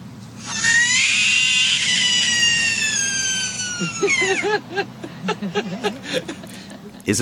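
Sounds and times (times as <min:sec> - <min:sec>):
frog screaming: 0:00.4 - 0:04.5
laughter: 0:03.0 - 0:07.0.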